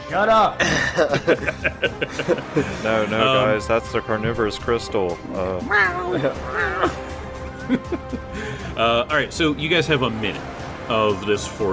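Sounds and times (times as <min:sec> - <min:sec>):
speech: 0:00.1 - 0:07.0, 0:07.7 - 0:11.7
laughter: 0:00.6 - 0:03.7, 0:05.7 - 0:09.0
cat howling: 0:05.6 - 0:07.5.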